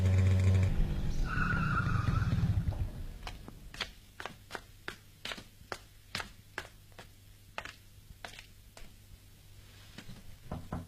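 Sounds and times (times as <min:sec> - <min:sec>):
motorcycle speeding through quiet late-night streets: 0:00.0 - 0:03.0
motorcycle tire squeal: 0:00.7 - 0:02.8.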